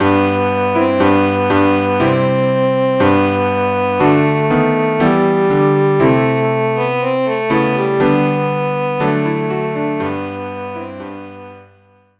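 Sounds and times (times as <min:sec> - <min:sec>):
cello playing a chorale: 0:00.0 - 0:11.6
piano playing a chorale: 0:00.0 - 0:12.1.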